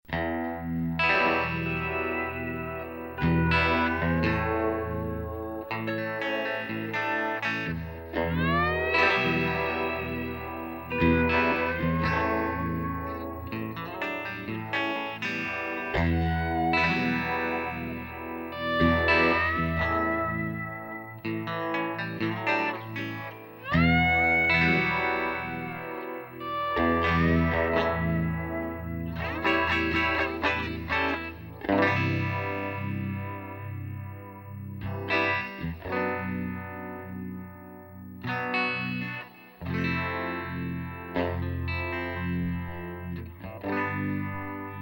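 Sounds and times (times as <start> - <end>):
guitar loop: 0.1 - 44.8.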